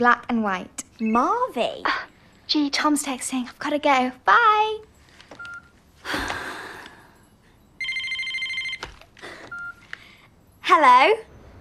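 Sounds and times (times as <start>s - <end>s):
speech: 0.0s - 4.9s, 10.7s - 11.3s
electronic telephone ringing: 5.4s - 5.7s, 7.8s - 9.9s.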